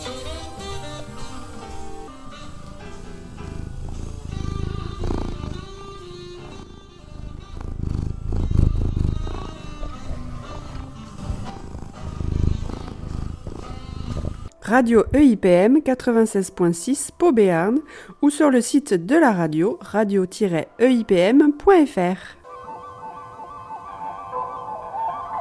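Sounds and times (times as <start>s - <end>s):
cat purring: 0.0s - 14.6s
mellow jazz music: 0.0s - 19.8s, 20.7s - 25.3s
speech: 14.7s - 22.4s.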